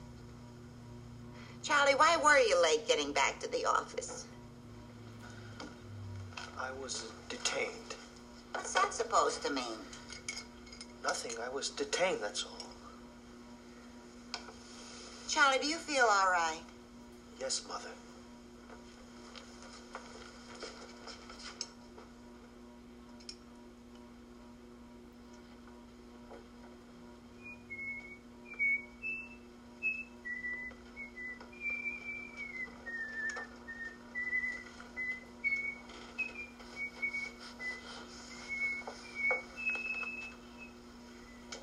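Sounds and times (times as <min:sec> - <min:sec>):
low steady hum: 0:00.0 - 0:41.6
speech: 0:01.6 - 0:04.3, 0:06.6 - 0:07.9, 0:08.6 - 0:10.0, 0:11.0 - 0:12.6, 0:15.3 - 0:16.7, 0:17.4 - 0:18.0
person whistling a wandering melodic tune: 0:27.4 - 0:41.5.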